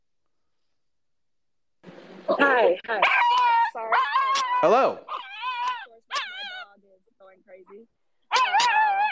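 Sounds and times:
speech: 2.3 - 3.3, 4.6 - 5.1
small male dog whining: 2.9 - 6.7, 8.3 - 9.1.

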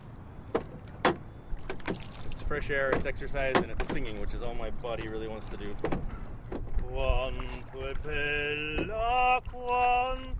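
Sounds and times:
boat pushing out onto calm glassy water with swishing splashes: 0.0 - 10.3
speech: 2.5 - 6.3, 6.9 - 10.3.

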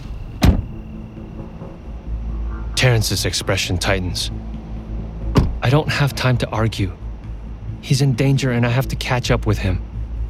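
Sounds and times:
car door unlatching and swinging open: 0.0 - 0.8, 5.3 - 5.6
faint steady low hum from the vehicle: 0.0 - 10.2
speech: 2.8 - 4.5, 5.6 - 7.0, 7.8 - 9.9.

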